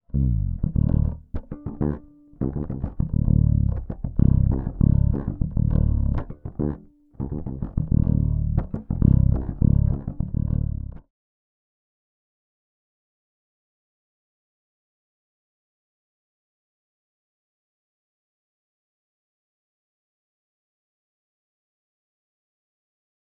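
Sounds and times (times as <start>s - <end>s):
fretless five-string bass groove with humbucker: 0.0s - 11.0s.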